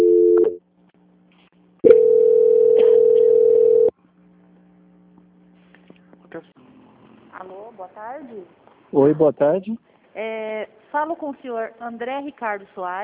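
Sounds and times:
telephone line tone during a call transfer: 0.0s - 0.6s, 1.8s - 3.9s
low constant hum: 0.0s - 13.0s
speech: 7.9s - 13.0s.

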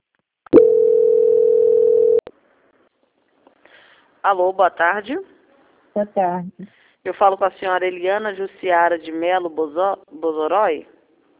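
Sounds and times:
telephone line tone during bank call transfer: 0.6s - 2.3s
speech: 4.2s - 5.3s, 6.0s - 10.9s.

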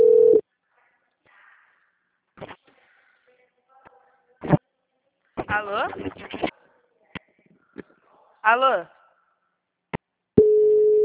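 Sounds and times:
steady low-pitched telephone line tone on an outgoing call: 0.0s - 0.4s, 10.4s - 11.0s
speech: 5.5s - 6.5s, 8.4s - 9.0s.

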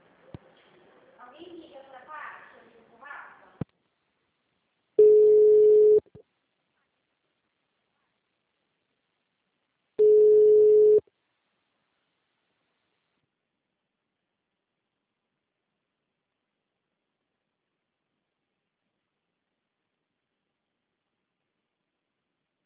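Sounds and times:
ringback tone of an outgoing telephone call: 5.0s - 6.0s, 10.0s - 11.0s.

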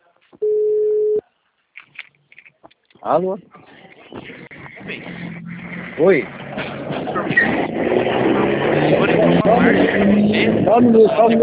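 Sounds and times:
speech: 3.0s - 4.2s, 6.0s - 11.4s
car engine rumbling past: 4.2s - 11.4s.

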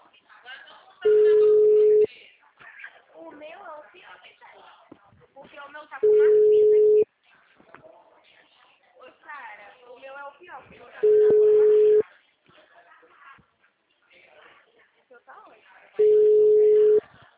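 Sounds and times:
people talking: 0.0s - 17.3s
telephone ringback tones while placing a call: 1.1s - 2.1s, 6.0s - 7.0s, 11.0s - 12.0s, 16.0s - 17.0s.

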